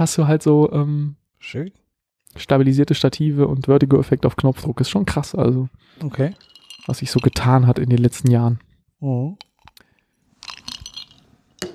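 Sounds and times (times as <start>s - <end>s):
speech: 0.0s - 9.4s
ice cubes clinking in a glass: 6.2s - 8.4s, 10.4s - 11.2s.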